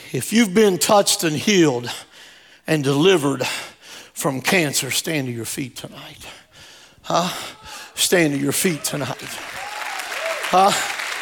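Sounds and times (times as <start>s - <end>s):
speech: 0.1s - 2.1s, 2.7s - 6.4s, 7.0s - 9.6s, 10.5s - 10.9s
crowd applauding in a reverberant hall: 8.7s - 11.2s.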